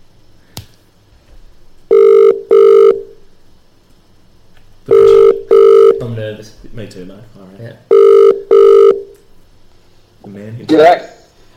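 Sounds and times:
telephone ringback tone of an outgoing call: 1.9 - 3.1, 4.9 - 6.0, 7.9 - 9.1
speech: 6.0 - 7.9, 10.3 - 11.1.

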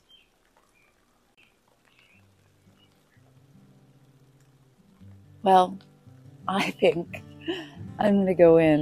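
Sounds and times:
bird chirps: 0.0 - 3.3
gentle rain falling outdoors: 0.0 - 8.8
speech: 5.4 - 5.9, 6.5 - 8.8.

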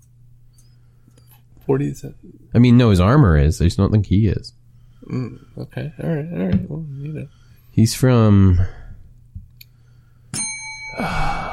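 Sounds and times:
speech: 1.7 - 8.8
bright bell ringing with sustained metallic tone: 10.3 - 11.2.

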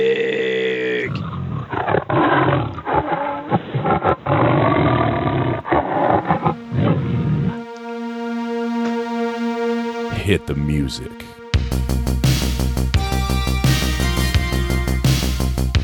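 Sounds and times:
tiger roaring and snarling: 0.0 - 7.6
sustained synth note: 6.2 - 15.0
steady electronic tone: 6.2 - 15.7
speech: 10.4 - 13.7.

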